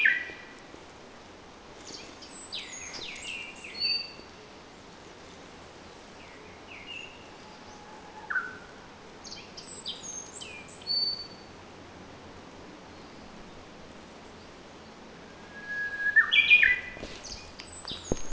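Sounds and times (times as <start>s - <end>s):
common nightingale singing: 0.0s - 0.5s, 1.8s - 4.4s, 6.2s - 11.5s, 15.2s - 18.3s
steady low background hiss: 0.0s - 18.3s.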